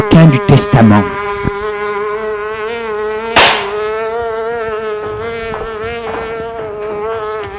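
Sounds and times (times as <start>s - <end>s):
speech: 0.0s - 1.6s
fly buzzing: 0.0s - 7.5s
sharp swatting crack: 3.4s - 3.8s.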